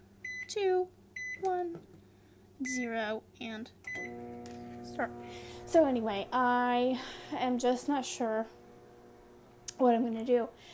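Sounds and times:
short electronic beeps from microwave keypad with Braille letters: 0.2 - 0.5, 1.2 - 1.5, 2.7 - 2.9, 3.9 - 4.2
speech: 0.5 - 2.0, 2.6 - 8.6, 9.8 - 10.7
brief voiced syllable from talking microwave: 4.8 - 8.6.

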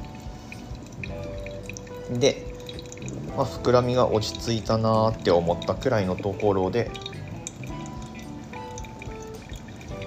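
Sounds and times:
hot water pouring from a kettle onto coffee grounds: 0.0 - 10.0
speech: 2.1 - 7.1.

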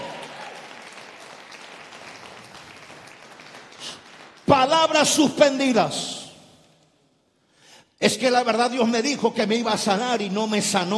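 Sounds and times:
audience applauding: 0.0 - 5.0
speech: 3.9 - 6.2, 8.0 - 10.9.

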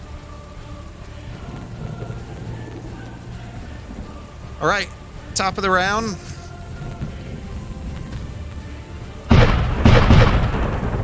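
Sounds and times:
low rumbling ambient bed: 0.0 - 11.0
speech: 4.6 - 6.3
cannon fire booming blasts: 9.3 - 11.0.

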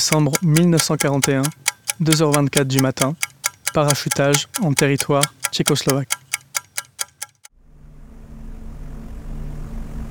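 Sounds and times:
speech: 0.0 - 6.2
quick sharp metallic clicks: 0.0 - 7.5.

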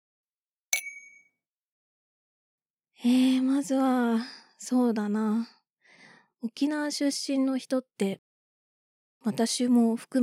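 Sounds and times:
glasses clinking in a toast: 0.8 - 1.2
speech: 3.0 - 5.6, 6.4 - 8.2, 9.2 - 10.2.

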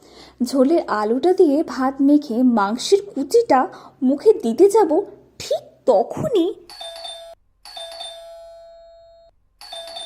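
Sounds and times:
speech: 0.4 - 5.2, 5.8 - 6.7
electronic doorbell chime: 6.7 - 10.0.

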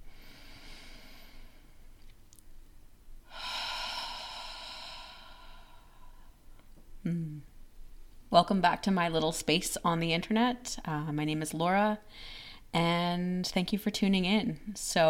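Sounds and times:
deep breath in and out: 0.0 - 2.0, 3.3 - 6.5, 12.1 - 12.7
speech: 8.4 - 15.0.

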